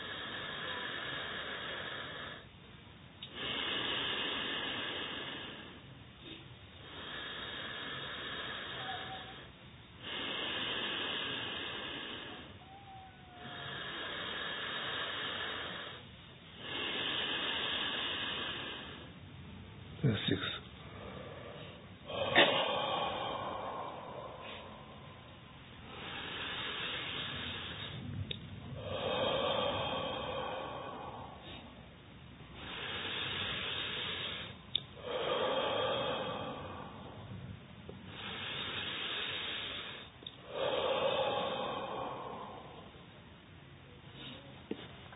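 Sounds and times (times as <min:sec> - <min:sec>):
forceful rhythmic breathing during breathing meditation: 0:00.0 - 0:02.6, 0:03.2 - 0:45.1.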